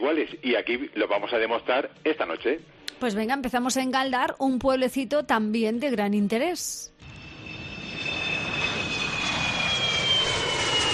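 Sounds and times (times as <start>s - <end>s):
speech: 0.1s - 7.1s
airplane engine roar with a thin high whine: 7.0s - 10.9s.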